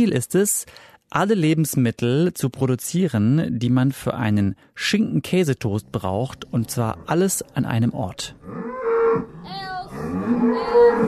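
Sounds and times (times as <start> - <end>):
speech: 0.0 - 11.0
dairy cow mooing in a barn stall on an urban farm in Amsterdam: 8.4 - 11.0.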